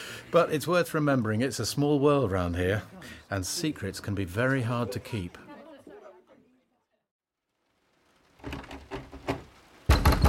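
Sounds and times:
speech: 0.3s - 5.4s
heavy rapid banging on a door: 8.4s - 10.2s.

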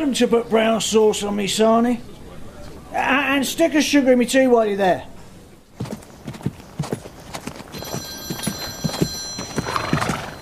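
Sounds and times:
speech: 0.0s - 2.2s, 2.9s - 5.1s
clip-clop of hooves: 5.8s - 10.3s
mobile phone ringing: 7.7s - 10.3s.

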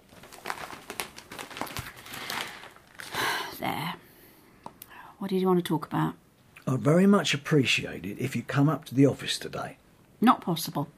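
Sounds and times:
newspaper being folded: 0.0s - 3.3s
speech: 5.2s - 10.9s.

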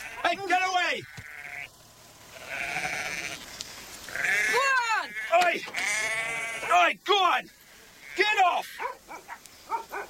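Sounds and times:
sheep bleating: 0.0s - 1.7s, 2.3s - 3.4s, 4.1s - 7.0s, 8.0s - 8.8s
steady noise: 0.0s - 10.0s
speech: 0.3s - 1.2s.

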